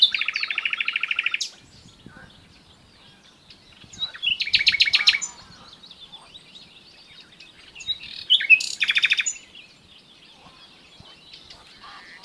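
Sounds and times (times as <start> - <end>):
common nightingale singing: 0.0 - 12.2.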